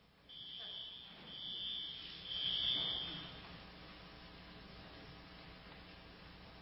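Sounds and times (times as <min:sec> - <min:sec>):
building fire alarm shrill high-pitched electronic tone: 0:00.3 - 0:03.5.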